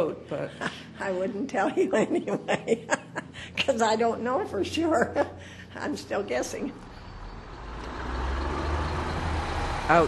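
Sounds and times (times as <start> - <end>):
speech: 0.0 - 6.9, 9.9 - 10.0
laughter: 0.4 - 3.8
trucks rumbling through a prairie town: 5.7 - 10.0.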